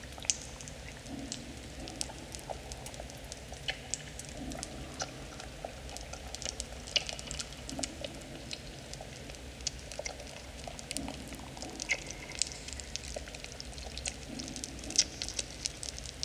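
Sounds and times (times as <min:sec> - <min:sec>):
cave ambience: 0:00.2 - 0:16.2.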